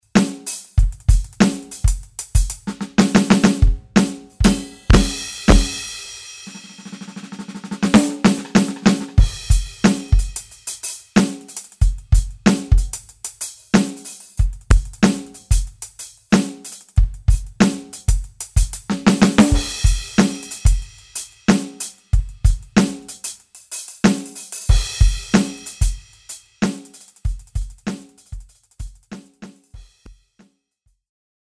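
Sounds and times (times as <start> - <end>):
Simmons SD200 drum kit with Modern Maple kit: 0.0 - 30.5.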